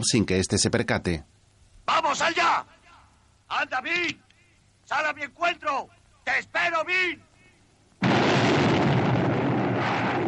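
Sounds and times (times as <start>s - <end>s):
speech: 0.0s - 2.8s, 3.5s - 4.3s, 4.9s - 7.3s
gunshot blast fired by a judge into a man's back in a western: 8.0s - 10.2s.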